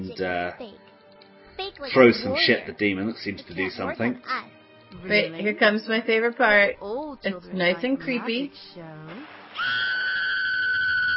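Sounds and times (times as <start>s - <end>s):
speech: 0.1s - 0.9s, 1.8s - 9.8s
woman screaming in a creepy scene: 9.6s - 11.1s.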